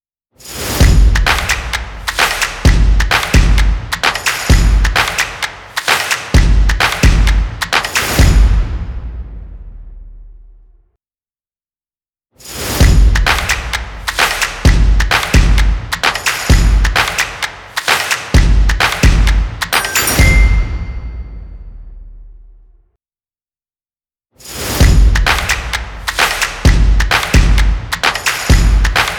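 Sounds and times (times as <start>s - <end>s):
drums in a logo: 0.6s - 9.3s, 12.6s - 20.6s, 24.5s - 29.1s
claps in a logo: 1.2s - 8.3s, 13.2s - 20.2s, 25.1s - 29.1s.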